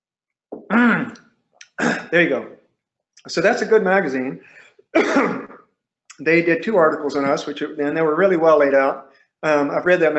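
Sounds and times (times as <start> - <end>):
person clearing throat: 0.6 - 2.3, 5.0 - 5.7
speech: 2.1 - 2.6, 3.2 - 5.5, 6.2 - 10.1.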